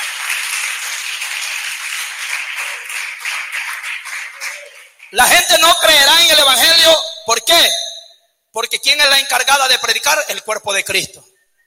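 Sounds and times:
crowd applauding: 0.0s - 5.4s
speech: 5.1s - 7.8s, 8.5s - 11.3s.

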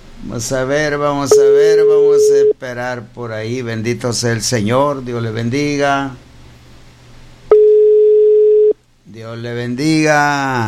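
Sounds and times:
speech: 0.2s - 6.2s, 9.2s - 10.6s
steady unbroken telephone tone on a call that will not connect: 1.3s - 2.6s, 7.5s - 8.8s.

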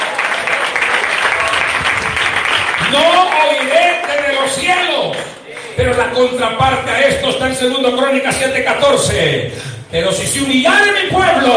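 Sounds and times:
audience applauding: 0.0s - 5.8s
speech: 2.9s - 3.6s, 4.5s - 11.5s.

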